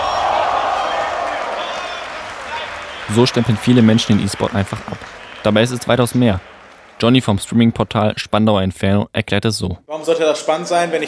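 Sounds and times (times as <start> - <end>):
scattered shouts in an esports arena crowd: 0.0 - 4.1
large crowd cheering in an esports arena: 0.0 - 7.7
people clapping in an esports arena: 0.0 - 7.9
speech: 3.1 - 11.0.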